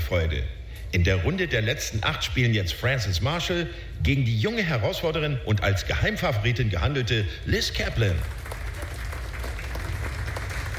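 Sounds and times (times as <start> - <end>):
speech: 0.1 - 8.4
audience applause: 8.2 - 10.7.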